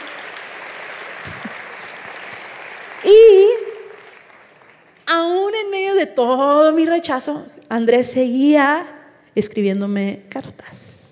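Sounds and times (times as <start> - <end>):
audience applauding: 0.0 - 5.0
speech: 6.1 - 11.0.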